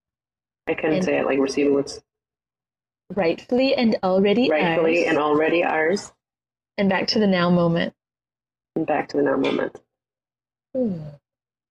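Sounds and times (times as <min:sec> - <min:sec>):
speech: 0:00.7 - 0:02.1, 0:03.1 - 0:06.2, 0:06.8 - 0:08.0, 0:08.8 - 0:09.8, 0:10.8 - 0:11.2
person yawning: 0:10.8 - 0:11.2.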